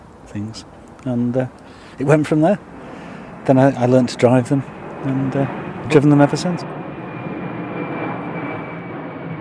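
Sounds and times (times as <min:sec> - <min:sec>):
airplane passing overhead near an airport outside Manchester: 0:00.0 - 0:09.3
speech: 0:00.3 - 0:02.7, 0:03.4 - 0:06.7
thin high-pitched airplane whine: 0:03.5 - 0:09.3.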